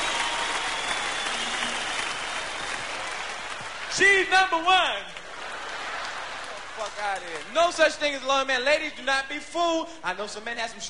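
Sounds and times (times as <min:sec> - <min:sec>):
sustained applause from a large audience: 0:00.0 - 0:07.6
speech: 0:04.0 - 0:05.2, 0:06.8 - 0:10.8.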